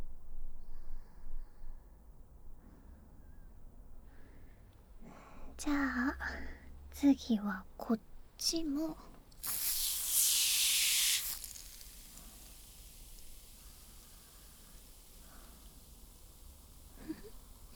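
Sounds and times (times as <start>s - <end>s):
speech: 5.6s - 9.6s
spray bottle spraying a hissing burst of mist: 8.5s - 17.7s.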